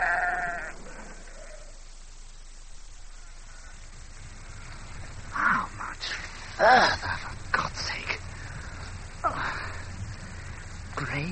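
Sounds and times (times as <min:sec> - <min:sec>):
sheep bleating: 0:00.0 - 0:01.8
quiet outdoor ambience: 0:00.0 - 0:11.3
speech: 0:06.6 - 0:07.1.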